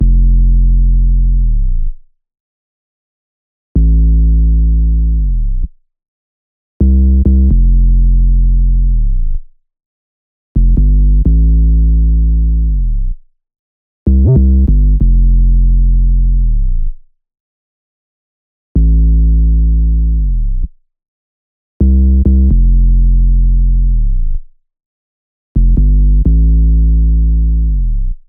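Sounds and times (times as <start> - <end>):
128 bpm 808 sub bass in F for trap: 0.0 - 2.0, 3.8 - 5.7, 6.8 - 9.5, 10.6 - 13.2, 14.1 - 17.0, 18.8 - 20.7, 21.8 - 24.5, 25.6 - 28.2.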